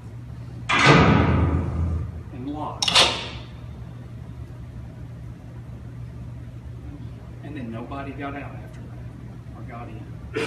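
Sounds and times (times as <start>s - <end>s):
heavy door slamming shut in a large room: 0.7s - 2.2s
speech: 7.8s - 8.8s, 9.7s - 10.4s.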